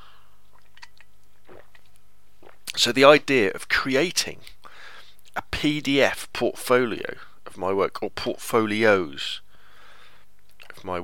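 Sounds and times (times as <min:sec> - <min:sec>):
hiss: 0:00.0 - 0:11.0
slurping coffee from a plastic camera-lens-shaped mug: 0:01.5 - 0:02.7
speech: 0:02.8 - 0:04.6, 0:05.6 - 0:09.4, 0:10.8 - 0:11.0.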